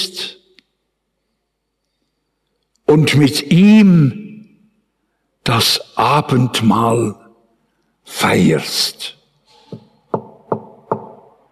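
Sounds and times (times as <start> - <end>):
speech: 2.9 - 4.2, 5.5 - 7.2, 8.1 - 9.2
knocking on a door: 9.7 - 11.3.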